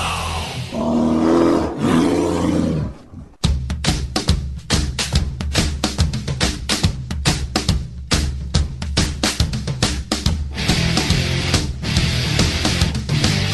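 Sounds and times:
loud deep roar: 0.0 - 3.4
sharp rhythmic percussive hits: 3.4 - 13.4.

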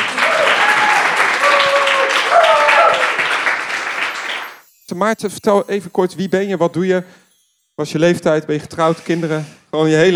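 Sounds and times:
people cheering: 0.0 - 4.6
audience applauding: 0.0 - 5.2
speech: 5.0 - 7.2, 7.8 - 10.1.

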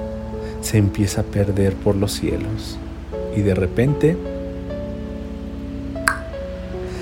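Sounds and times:
calm sustained ambient music with soft low pulse: 0.0 - 7.0
speech: 0.6 - 4.3
bubble pop sound effect: 6.1 - 6.4.

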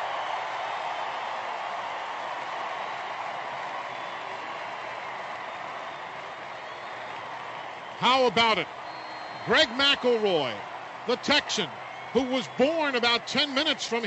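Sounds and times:
stadium crowd of football fans cheering: 0.0 - 14.0
speech: 8.0 - 8.8, 9.5 - 14.0.

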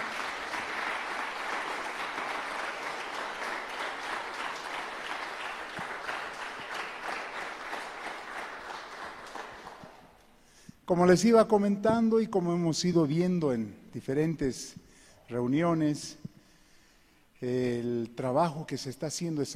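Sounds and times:
loud crowd applause: 0.0 - 10.1
speech: 10.9 - 16.2, 17.4 - 19.5.

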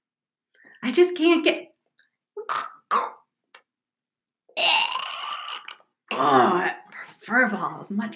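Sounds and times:
speech: 0.8 - 1.7, 6.2 - 8.1
person vocally imitating a cat hacking up a hairball: 2.4 - 3.4, 4.5 - 6.8.

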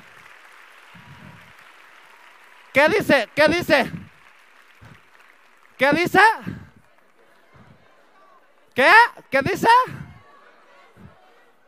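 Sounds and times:
audience applause: 0.0 - 8.6
speech: 2.8 - 4.0, 5.8 - 6.6, 8.8 - 10.0
person speaking loudly: 2.8 - 4.1, 5.8 - 6.7, 8.8 - 10.2.

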